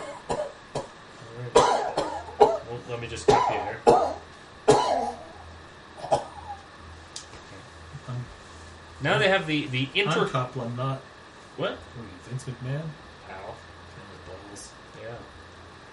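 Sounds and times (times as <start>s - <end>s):
person coughing: 0.0s - 0.9s, 1.6s - 2.7s, 3.3s - 5.3s, 6.0s - 6.6s
person clearing throat: 1.5s - 2.7s, 3.3s - 5.4s, 6.0s - 6.6s
speech: 2.8s - 4.2s, 9.0s - 13.1s.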